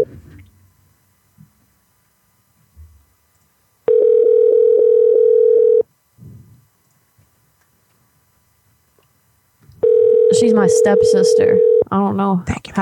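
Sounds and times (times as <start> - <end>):
telephone line ringing tone on an outgoing call: 3.9 - 5.8, 9.8 - 11.9
speech: 10.4 - 12.8.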